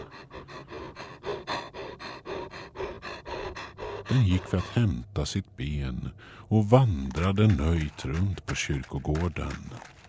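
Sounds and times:
dog panting loudly: 0.0 - 4.9
speech: 4.1 - 10.0.

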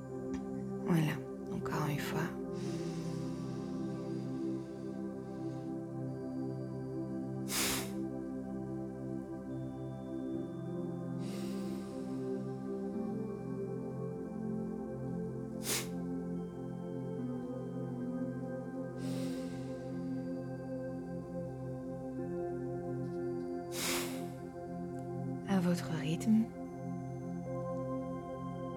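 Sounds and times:
steady tonal drone: 0.0 - 28.7
speech: 0.9 - 1.2
slow breathing in and out during a guided breathing exercise: 2.4 - 6.0, 7.4 - 8.0, 11.1 - 13.0, 15.6 - 16.0, 18.9 - 21.0, 23.7 - 24.6.

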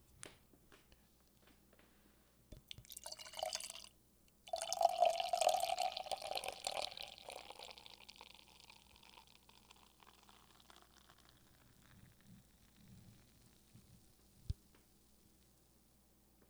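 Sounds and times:
beer poured into a tulip glass: 2.6 - 3.9, 4.5 - 12.5.

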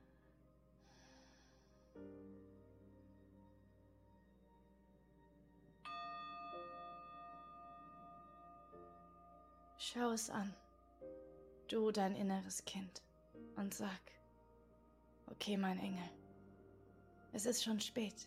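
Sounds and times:
meditation bell ringing: 4.3 - 11.7
speech: 9.8 - 10.6, 11.7 - 14.2, 15.3 - 16.2, 17.3 - 18.2.

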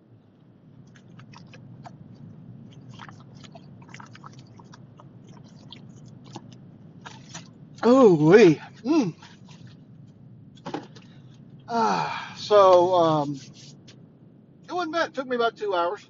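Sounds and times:
low steady hum: 0.0 - 16.0
person sipping water with wet mouth clicks and gulps: 0.9 - 8.0, 8.6 - 9.8
speech: 7.8 - 9.2, 12.5 - 13.7, 14.8 - 16.0.

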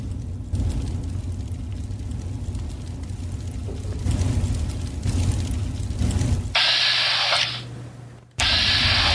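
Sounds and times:
steady low rumble of noise: 0.0 - 9.1
video game submachine gun firing: 8.4 - 9.1.

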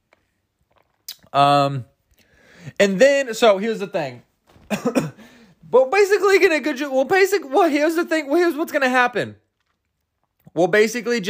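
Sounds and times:
person sipping water with a soft wet mouth click: 0.1 - 1.4, 9.4 - 10.6
speech: 1.3 - 1.9, 2.8 - 5.1, 5.7 - 9.4, 10.6 - 11.2.

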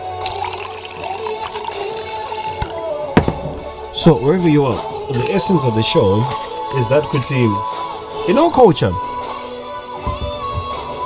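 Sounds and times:
drink pouring into a glass: 0.0 - 8.2
speech: 4.0 - 9.1.

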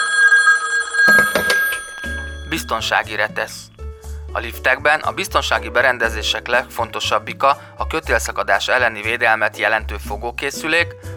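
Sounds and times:
smartphone ringtone with electronic melody: 0.0 - 3.4
speech: 2.5 - 3.7, 4.4 - 11.1.

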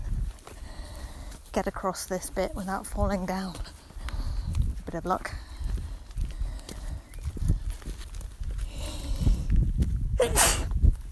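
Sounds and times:
footsteps outdoors: 0.0 - 10.0
speech: 1.5 - 3.8, 4.9 - 5.4
person sneezing: 10.2 - 10.7.

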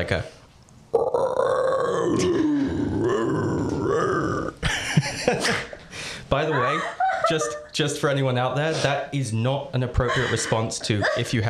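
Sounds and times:
speech: 0.0 - 0.4, 2.1 - 2.6, 6.3 - 11.4
person imitating a howler monkey roaring howl: 0.9 - 4.6, 10.0 - 11.3
rough guttural grunting calls imitating a howler monkey: 0.9 - 4.6, 10.0 - 11.4
laughter: 4.6 - 7.8, 10.0 - 11.4.

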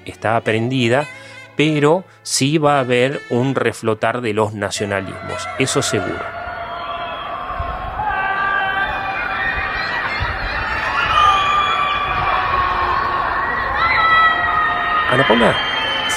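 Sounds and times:
speech: 0.0 - 6.4, 15.1 - 16.1
crowd of people shouting and yelling: 4.8 - 16.1.

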